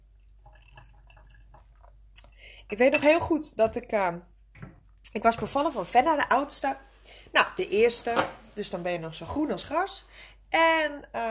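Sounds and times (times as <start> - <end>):
sipping water from a glass: 0.0 - 2.7
speech: 2.7 - 4.3, 5.2 - 11.2.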